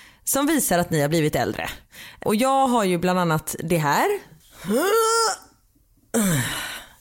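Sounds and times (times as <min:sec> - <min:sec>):
speech: 0:00.3 - 0:05.5, 0:06.1 - 0:06.7
person groaning with effort while rising from a chair: 0:04.6 - 0:05.5, 0:06.1 - 0:06.9.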